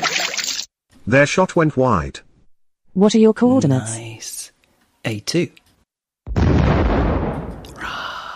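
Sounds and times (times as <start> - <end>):
speech: 1.1 - 2.3, 3.0 - 4.1, 5.0 - 5.6
explosion effect for a hit on a destroyer in a Battleship game: 6.3 - 7.8.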